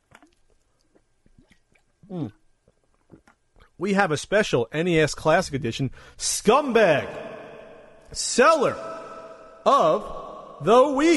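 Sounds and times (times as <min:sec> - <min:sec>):
wet mouth clicks and lip noises: 0:00.0 - 0:03.7
person gulping a sip of water: 0:00.0 - 0:03.8
speech: 0:02.1 - 0:02.4, 0:03.8 - 0:07.3, 0:08.1 - 0:09.0, 0:09.6 - 0:11.1.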